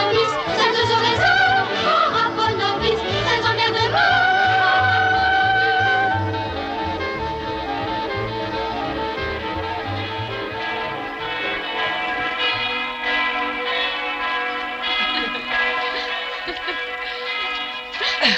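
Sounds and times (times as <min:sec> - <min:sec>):
bells ringing: 0:00.0 - 0:18.3
dense resonant music: 0:00.0 - 0:18.3
laughter: 0:00.0 - 0:18.3.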